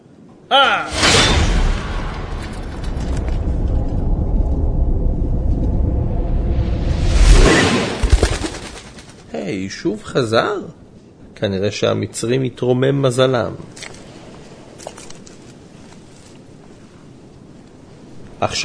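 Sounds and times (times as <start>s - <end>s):
speech: 0.5s - 1.2s, 9.5s - 10.8s, 11.4s - 13.8s, 18.4s - 18.6s
loud rushing whoosh of an arrow flying back: 0.9s - 9.3s.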